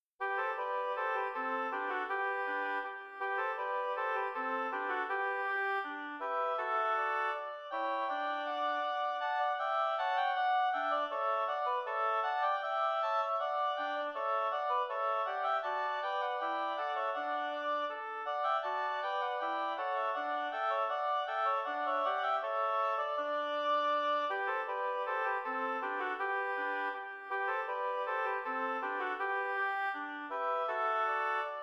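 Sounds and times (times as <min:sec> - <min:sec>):
oboe trio playing a march: 0:00.2 - 0:31.6.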